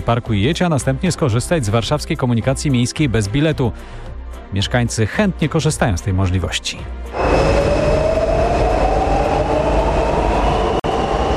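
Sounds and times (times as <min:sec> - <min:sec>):
speech: 0:00.0 - 0:07.8
metro train rumbling in an underground station: 0:07.1 - 0:11.3.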